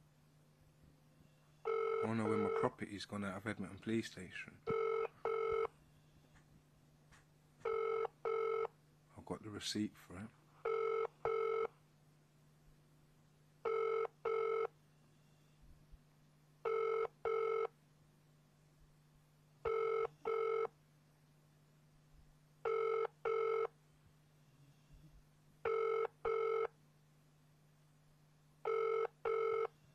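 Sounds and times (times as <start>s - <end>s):
faint low hum: 0.0s - 29.9s
telephone call to 999 ringing unanswered in a double-pulse pattern: 1.6s - 2.8s, 4.7s - 5.7s, 7.6s - 8.7s, 10.6s - 11.7s, 13.6s - 14.8s, 16.6s - 17.8s, 19.6s - 20.7s, 22.6s - 23.8s, 25.6s - 26.8s, 28.6s - 29.7s
speech: 2.0s - 4.8s, 9.6s - 10.4s.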